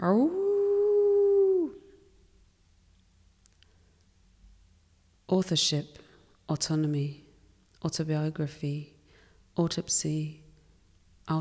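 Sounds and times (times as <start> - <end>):
single sustained wolf howl: 0.0 - 1.9
speech: 5.4 - 7.2, 7.8 - 8.9, 9.6 - 10.4.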